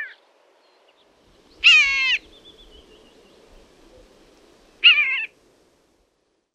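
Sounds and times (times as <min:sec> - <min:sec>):
common buzzard: 0:01.6 - 0:02.2, 0:04.8 - 0:05.4.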